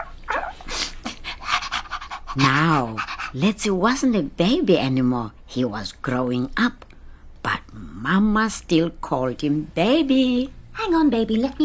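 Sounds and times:
white dog sniffing and panting: 0:00.6 - 0:03.6
speech: 0:02.4 - 0:06.8, 0:07.4 - 0:11.6.

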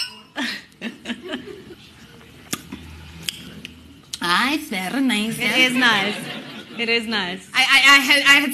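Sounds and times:
glasses clinking in a toast: 0:00.0 - 0:00.6
speech: 0:00.4 - 0:00.6, 0:04.4 - 0:08.5
chuckling and soft laughter: 0:00.4 - 0:01.8, 0:05.6 - 0:07.0.

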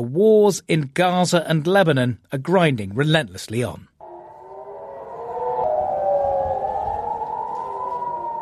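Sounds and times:
speech: 0:00.0 - 0:03.9
air raid sirens wailing across a city: 0:04.0 - 0:08.4.

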